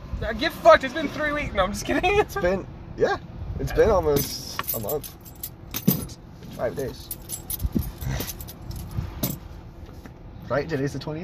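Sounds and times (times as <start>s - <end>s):
speech: 0.2s - 5.4s, 6.6s - 7.2s, 10.5s - 11.2s
set of keys tossed and jangling: 4.2s - 6.2s, 6.8s - 9.4s.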